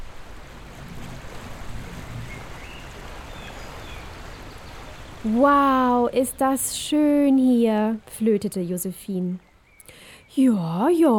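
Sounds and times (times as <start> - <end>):
river water rushing and splashing: 0.0 - 8.0
speech: 5.2 - 9.5, 10.3 - 11.1.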